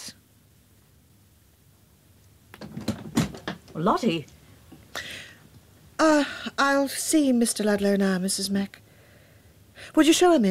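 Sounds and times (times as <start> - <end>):
door opening and closing: 2.6 - 3.9
speech: 3.8 - 4.4, 6.0 - 8.8, 9.9 - 10.4.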